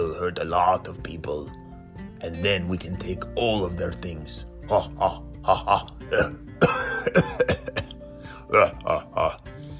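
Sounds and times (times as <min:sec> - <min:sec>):
speech: 0:00.1 - 0:01.6, 0:02.2 - 0:07.6, 0:08.5 - 0:09.5
person fake coughing: 0:04.8 - 0:09.4.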